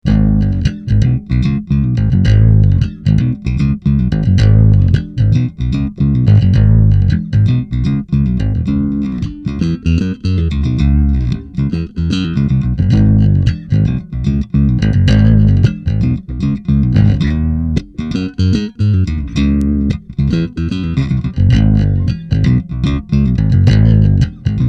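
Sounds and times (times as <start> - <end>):
bass guitar riff through an SVT amplifier: 0.0 - 24.6.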